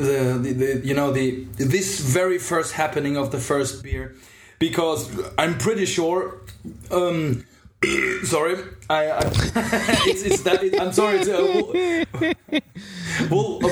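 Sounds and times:
speech: 0.0s - 13.7s
long voiced burp: 9.2s - 12.0s
person chuckling: 9.2s - 12.7s.

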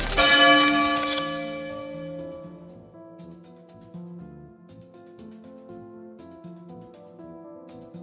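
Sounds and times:
large iron bell clanging: 0.1s - 2.6s.

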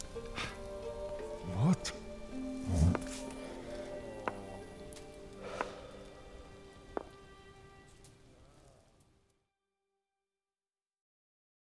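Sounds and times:
steady rain falling: 0.0s - 9.0s.

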